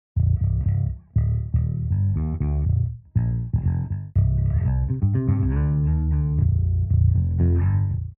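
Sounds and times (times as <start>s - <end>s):
bass guitar without eq: 0.2s - 8.1s.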